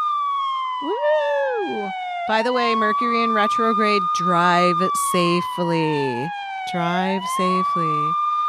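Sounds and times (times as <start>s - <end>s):
police siren wailing: 0.2s - 8.4s
speech: 1.9s - 8.2s.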